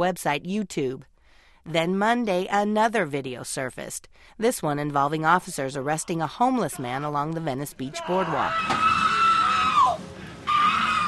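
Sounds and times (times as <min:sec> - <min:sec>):
speech: 0:00.0 - 0:09.0
handcuffed man screaming inside a police squad car: 0:07.9 - 0:11.0.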